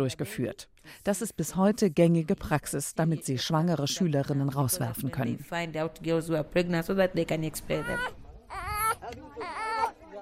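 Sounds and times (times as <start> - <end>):
speech: 0.0 - 9.6
baby boy crying after waking in his cot: 7.7 - 10.0.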